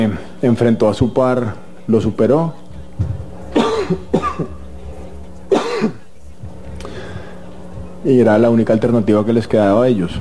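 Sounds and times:
speech: 0.0s - 3.1s, 3.9s - 4.5s, 8.0s - 10.2s
low steady hum: 0.0s - 10.2s
harsh rasping coughs: 3.5s - 4.6s, 5.5s - 6.1s.

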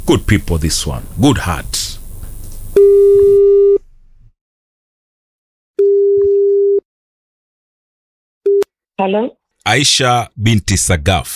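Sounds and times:
speech: 0.1s - 1.8s, 9.0s - 11.3s
ringback tone of an outgoing telephone call: 2.8s - 3.8s, 5.8s - 6.8s.

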